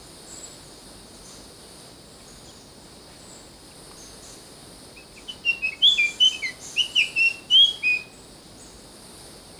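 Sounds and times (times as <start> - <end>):
soft background hiss: 0.0 - 9.5
Brown fantail chirping and whistling in Papua New Guinea: 2.1 - 8.8.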